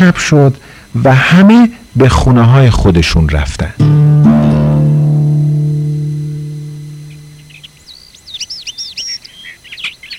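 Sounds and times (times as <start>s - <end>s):
speech: 0.0s - 4.2s
low sustained musical tone: 3.8s - 7.8s
bird chirping with tweets and trills: 3.8s - 10.1s.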